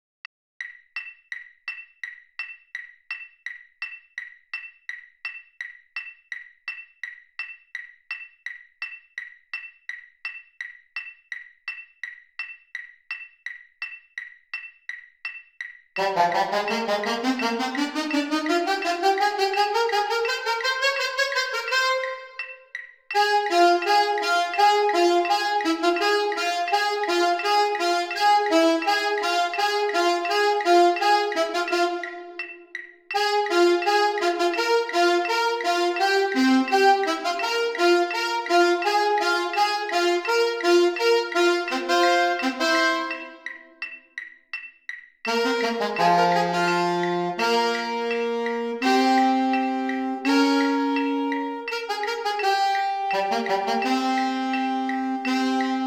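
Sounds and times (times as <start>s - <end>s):
marching band playing: 16.0s - 22.1s, 23.2s - 32.3s, 33.2s - 43.4s, 45.3s - 55.8s
alto saxophones in a marching band: 16.0s - 43.7s, 45.3s - 55.8s.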